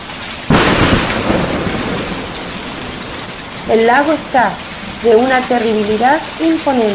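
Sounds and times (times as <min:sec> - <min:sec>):
heavy rain: 0:00.0 - 0:06.9
thunder crack: 0:00.5 - 0:05.8
speech: 0:03.7 - 0:06.9.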